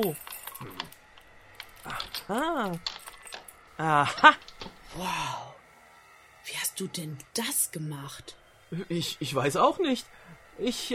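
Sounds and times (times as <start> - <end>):
speech: 0.0 - 0.7, 1.8 - 3.0, 3.8 - 5.5, 6.5 - 10.9
keys jangling: 0.0 - 3.7.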